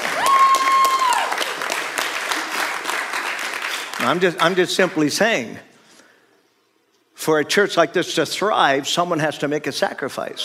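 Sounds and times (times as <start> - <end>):
audience clapping in a large church room: 0.0 - 5.1
speech: 4.1 - 5.7, 7.2 - 10.4.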